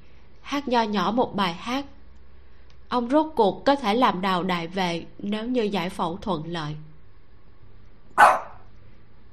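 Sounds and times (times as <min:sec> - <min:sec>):
quiet hum: 0:00.0 - 0:09.3
speech: 0:00.5 - 0:02.0, 0:02.9 - 0:06.9
dog barking outside the door: 0:08.2 - 0:08.7.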